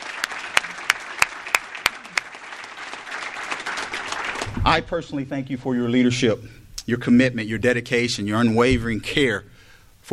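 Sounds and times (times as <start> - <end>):
audience applause: 0.0 - 5.0
speech: 4.7 - 9.5.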